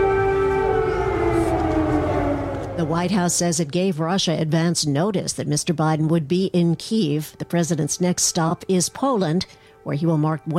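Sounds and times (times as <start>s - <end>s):
air raid sirens wailing in Kyiv, Ukraine: 0.0s - 4.7s
speech: 2.8s - 10.5s.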